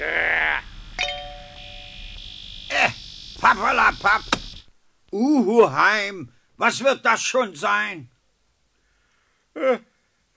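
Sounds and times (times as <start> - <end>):
radio station interval signal chime: 1.0 - 2.1
speech: 2.7 - 4.2, 5.2 - 8.2.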